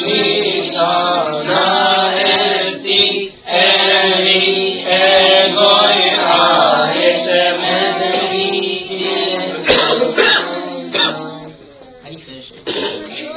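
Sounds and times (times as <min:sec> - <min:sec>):
continuous chanted verse: 0:00.0 - 0:11.7
person coughing and clearing their throat: 0:09.6 - 0:11.3, 0:12.7 - 0:13.0.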